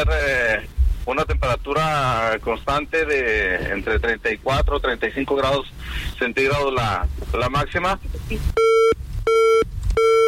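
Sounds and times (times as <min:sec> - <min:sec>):
speech: 0:00.0 - 0:08.9
faint noise: 0:00.0 - 0:10.2
telephone busy tone after a dropped call: 0:08.6 - 0:10.2.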